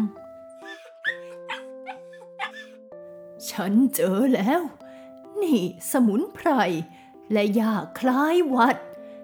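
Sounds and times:
puppy whimpering in short high yelps: 0:00.6 - 0:02.8
speech: 0:03.5 - 0:04.8, 0:05.4 - 0:08.9.

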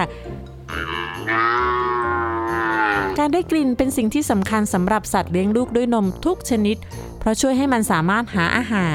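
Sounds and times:
cow mooing: 0:00.7 - 0:03.4
speech: 0:03.3 - 0:08.9.

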